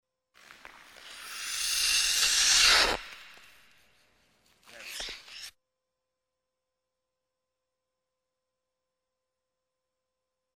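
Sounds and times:
ice skates approaching and stopping sharply: 0:00.4 - 0:05.5.

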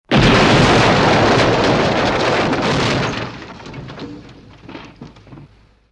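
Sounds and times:
wall of a two-storey building being demolished: 0:00.0 - 0:05.8.

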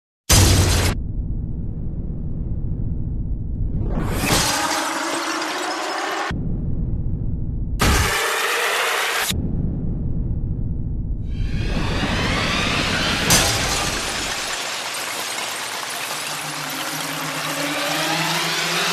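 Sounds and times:
scary sounds: 0:00.3 - 0:18.9.

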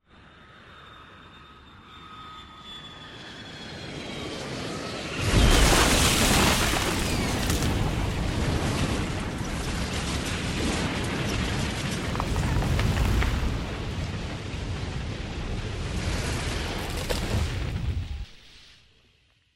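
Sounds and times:
airplane falling into a forest: 0:05.0 - 0:18.8.

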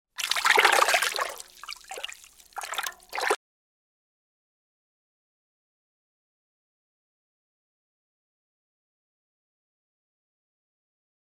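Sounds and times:
caught fish splashing: 0:00.2 - 0:03.4.

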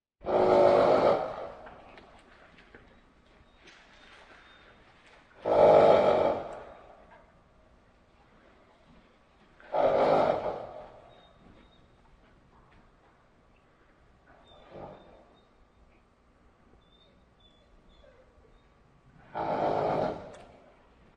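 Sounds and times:
horse snorting: 0:00.2 - 0:02.2, 0:05.4 - 0:07.2, 0:09.6 - 0:11.2, 0:14.5 - 0:15.3, 0:19.2 - 0:20.9.

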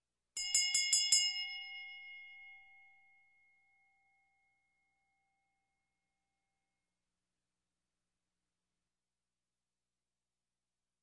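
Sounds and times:
small bell ringing: 0:00.4 - 0:04.5.

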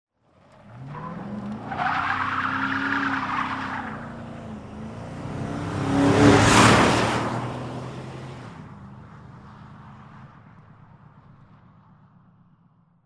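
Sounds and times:
car skidding: 0:00.3 - 0:08.6.

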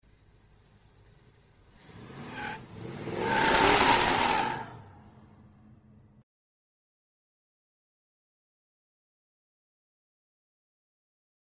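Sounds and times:
vehicle pulling away sharply with tyre squeal: 0:00.2 - 0:05.5.

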